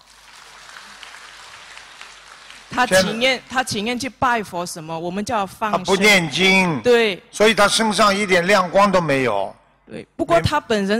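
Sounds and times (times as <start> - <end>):
audience applause: 0.0 - 3.2
speech: 2.8 - 10.9.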